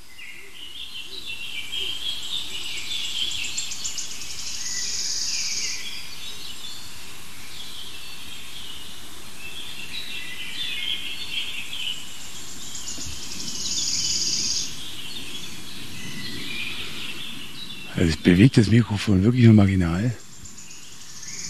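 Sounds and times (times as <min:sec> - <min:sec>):
bird singing outdoors: 0:00.0 - 0:21.4
low rumble of noise: 0:17.7 - 0:20.4
speech: 0:18.2 - 0:20.2.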